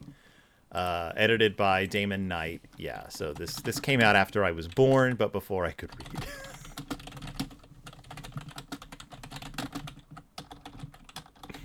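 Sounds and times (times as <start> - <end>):
speech: 0.7 - 6.5
computer keyboard keys clicking: 2.8 - 5.2, 5.9 - 11.6.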